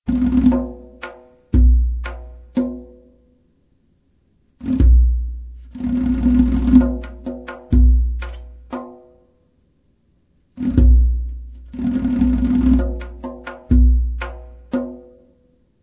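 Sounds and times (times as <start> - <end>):
ambient bongo music: 0.1 - 3.2, 4.6 - 9.3, 10.6 - 15.4.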